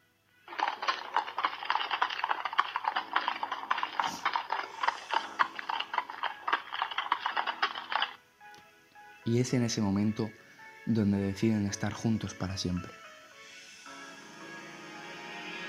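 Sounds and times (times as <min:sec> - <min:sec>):
horse hooves clip-clopping pulling a carriage: 0:00.5 - 0:08.2
horse-drawn carriage rattling: 0:00.5 - 0:08.2
speech: 0:09.3 - 0:13.0.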